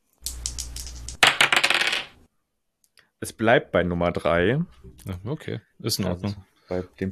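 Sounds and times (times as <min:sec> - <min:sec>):
dice clattering on a hard surface: 0:00.1 - 0:02.2
speech: 0:03.2 - 0:07.1.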